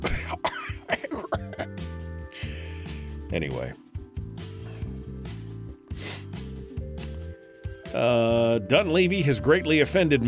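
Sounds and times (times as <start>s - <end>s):
man coughing and choking after inhaling spittle: 0.0s - 1.8s
man gasping with strained, voiced gasps: 2.2s - 3.2s, 4.4s - 6.5s
speech: 3.3s - 3.8s, 7.9s - 10.2s.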